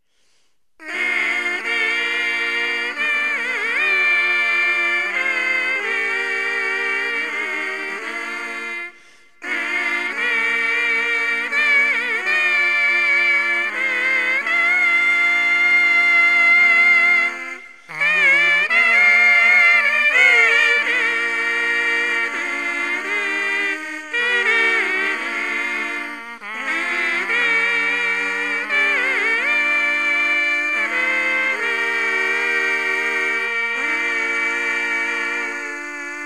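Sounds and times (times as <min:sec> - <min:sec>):
brass mouthpiece quartet: 0:00.0 - 0:36.2.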